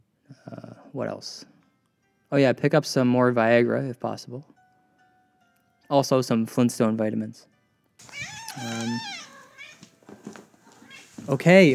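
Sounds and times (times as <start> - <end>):
speech: 0.9 - 1.5, 2.3 - 4.5, 5.9 - 9.2, 11.2 - 11.7
cat meowing: 8.0 - 10.0, 10.7 - 11.2.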